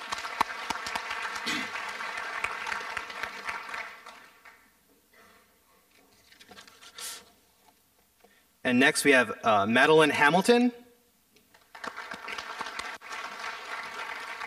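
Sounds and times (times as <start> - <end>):
room full of people clapping: 0.0 - 4.8, 11.5 - 14.4
speech: 8.7 - 10.8.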